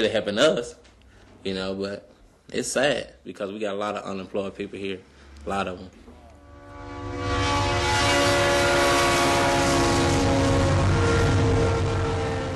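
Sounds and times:
speech: 0:00.0 - 0:06.0
train wheels and cars rolling past: 0:05.1 - 0:12.5
sustained horn-like tone: 0:05.2 - 0:12.5.

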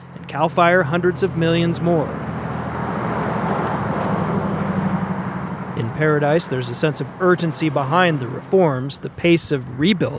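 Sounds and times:
traffic roar on a main road into a town: 0:00.0 - 0:10.1
speech: 0:00.3 - 0:02.3, 0:05.9 - 0:10.1.

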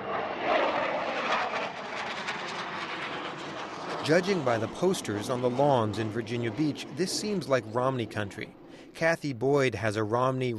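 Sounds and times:
military jet roaring overhead in Virginia Beach: 0:00.0 - 0:10.5
speech: 0:04.0 - 0:10.5.

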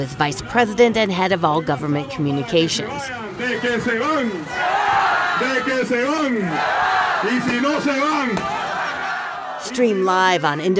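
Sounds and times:
speech: 0:00.0 - 0:04.8, 0:05.4 - 0:08.6, 0:09.6 - 0:10.7
loud outdoor protest crowd shouting in unison: 0:03.1 - 0:10.0.

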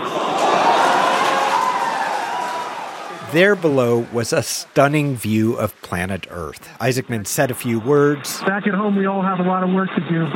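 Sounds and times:
crowd cheering and shouting wildly: 0:00.0 - 0:08.2
speech: 0:03.3 - 0:10.3.

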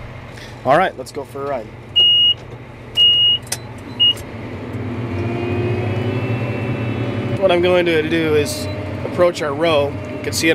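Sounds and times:
heavy engine of a tracked Caterpillar farm tractor plowing and planting: 0:00.0 - 0:10.5
speech: 0:00.6 - 0:01.8, 0:07.4 - 0:10.5
short electronic beeps: 0:02.0 - 0:02.4, 0:03.0 - 0:04.2.

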